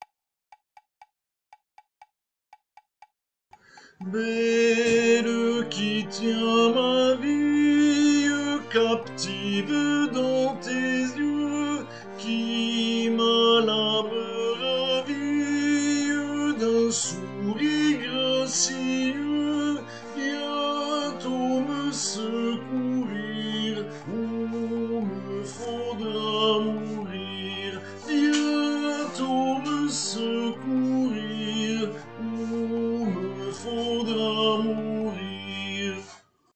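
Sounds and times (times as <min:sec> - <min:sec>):
tenors singing first verse: 0:04.0 - 0:36.1.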